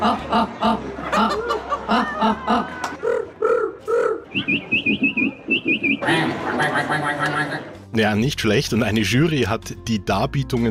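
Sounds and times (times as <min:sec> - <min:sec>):
speech: 0:00.0 - 0:00.9, 0:08.0 - 0:10.6
audience chuckling and laughing at a street art festival: 0:00.0 - 0:03.0, 0:04.3 - 0:07.8
person imitating bird calls at a bird-call imitation contest in Landshut: 0:01.9 - 0:07.7.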